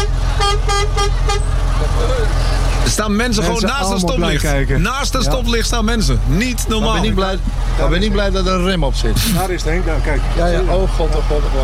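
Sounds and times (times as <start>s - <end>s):
car horns honking in traffic at a red light: 0.0s - 7.8s
steady low engine rumble: 0.0s - 11.6s
speech: 3.0s - 11.6s.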